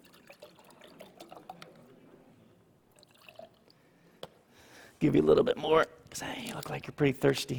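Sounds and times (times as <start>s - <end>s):
drink pouring into a cup: 0.0s - 2.1s, 2.9s - 3.8s
speech: 5.0s - 7.5s.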